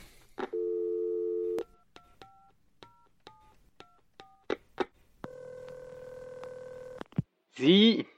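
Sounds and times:
telephone dial tone: 0:00.5 - 0:03.6, 0:05.2 - 0:07.1
speech: 0:07.6 - 0:08.1.

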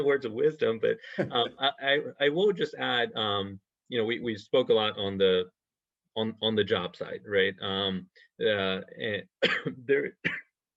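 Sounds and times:
speech: 0:00.0 - 0:05.6, 0:06.2 - 0:10.4
person clearing a dry throat: 0:09.4 - 0:10.5.

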